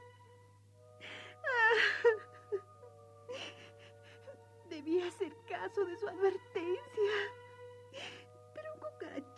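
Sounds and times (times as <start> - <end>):
person crying with whimpering sobs and gasping breaths: 1.1 - 4.3
speech: 5.6 - 7.2.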